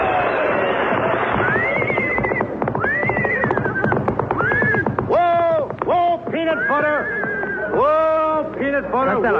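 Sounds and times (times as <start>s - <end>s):
horse hooves clopping: 0.1s - 9.3s
horse neighing: 1.5s - 4.9s.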